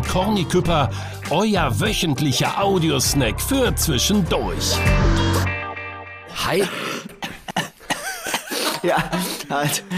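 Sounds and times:
speech: 0:00.1 - 0:05.2, 0:06.4 - 0:07.1, 0:08.8 - 0:09.9
man coughing: 0:06.5 - 0:09.8
laughter: 0:07.3 - 0:09.9.

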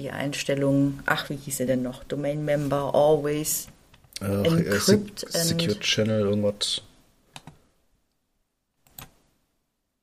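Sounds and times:
speech: 0:00.0 - 0:06.9
computer mouse clicking during online research: 0:07.3 - 0:07.6, 0:08.8 - 0:09.2.

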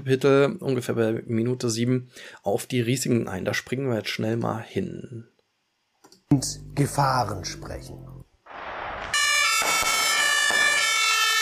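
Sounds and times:
speech: 0:00.0 - 0:05.3, 0:06.3 - 0:08.1
emergency vehicle siren: 0:09.1 - 0:11.4.

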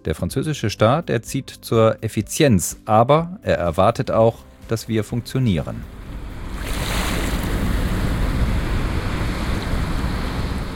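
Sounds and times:
speech: 0:00.0 - 0:06.0
wind noise by the Rhine in Bonn: 0:05.8 - 0:10.7
Rhine river rushing past Bonn: 0:05.9 - 0:10.7.

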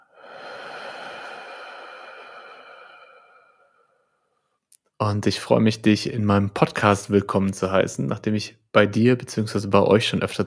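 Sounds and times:
slow breathy exhale during a breathing exercise: 0:00.0 - 0:04.5
speech: 0:05.0 - 0:10.4.

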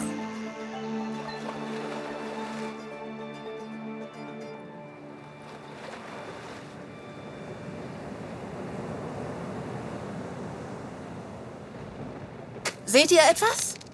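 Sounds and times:
soft tonal hum: 0:00.0 - 0:11.5
roaring wind over rough sea: 0:06.2 - 0:12.8
speech: 0:12.9 - 0:13.7.

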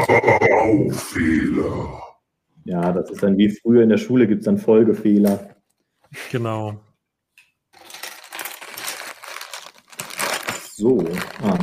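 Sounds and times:
speech: 0:00.0 - 0:06.9, 0:10.8 - 0:11.6
small plastic building pieces rustling and clicking while being handled: 0:07.7 - 0:11.6.

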